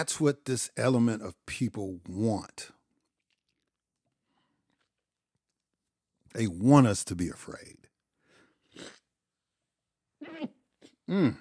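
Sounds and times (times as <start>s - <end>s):
speech: 0.0s - 2.8s, 6.3s - 7.9s, 8.8s - 9.0s, 11.1s - 11.3s
person sneezing: 10.2s - 11.3s.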